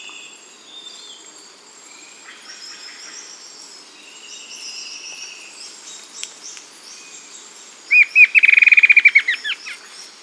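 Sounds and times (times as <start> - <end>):
bird trilling: 7.9 - 9.9.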